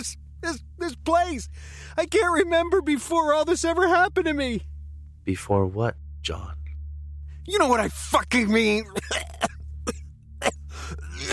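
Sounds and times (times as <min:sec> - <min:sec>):
speech: 0:00.0 - 0:06.6, 0:07.4 - 0:10.0
low steady hum: 0:00.0 - 0:11.3
sharp coughs: 0:08.9 - 0:11.3.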